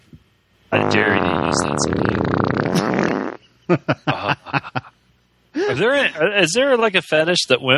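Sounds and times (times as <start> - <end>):
fart sound effect: 0.8 - 3.4
speech: 1.5 - 2.4, 3.7 - 4.7, 5.8 - 7.7
laughter: 3.5 - 5.0.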